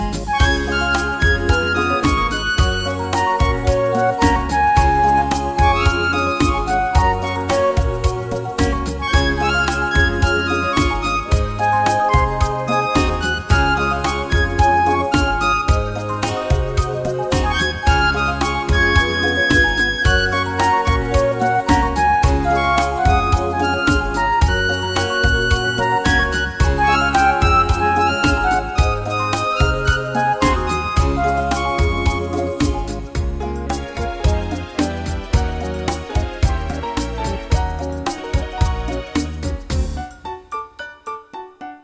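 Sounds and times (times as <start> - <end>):
soft rumba music: 0.0 - 41.8.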